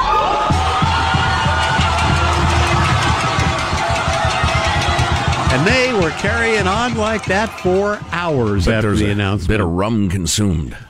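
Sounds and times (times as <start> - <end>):
whoops and shouts: 0.0 - 6.0
huge outdoor crowd of thousands cheering outside the governor's mansion in Old San Juan: 0.0 - 9.4
rhythmic banging or drumming: 0.4 - 9.6
speech: 5.7 - 10.8.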